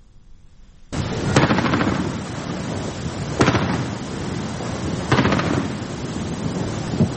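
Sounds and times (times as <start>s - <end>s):
anti-aircraft gunfire: 1.0s - 6.4s
constant roaring rumble: 1.0s - 7.1s.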